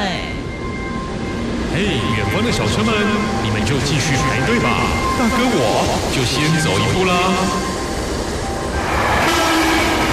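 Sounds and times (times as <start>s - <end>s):
steady whining tone: 0.0s - 10.1s
train pulling into a station: 0.0s - 10.1s
speech: 2.3s - 7.7s.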